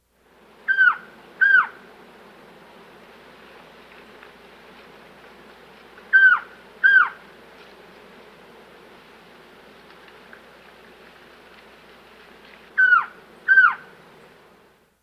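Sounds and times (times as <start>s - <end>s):
Orange-billed Trogon from South America: 0.7s - 1.8s, 6.1s - 7.2s, 12.8s - 13.9s.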